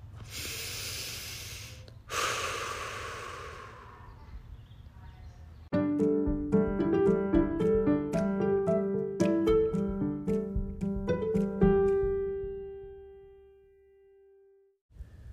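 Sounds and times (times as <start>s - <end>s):
deep breath in and out: 0.2s - 4.3s
soft instrumental music: 5.7s - 14.4s.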